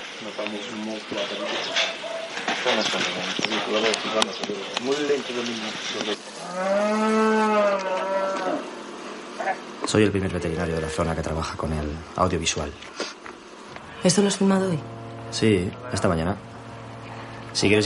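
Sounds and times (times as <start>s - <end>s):
speech: 0.4s - 1.9s, 2.6s - 8.1s, 9.9s - 13.2s, 14.0s - 16.5s, 17.6s - 17.8s
cow mooing while giving birth: 6.4s - 8.8s.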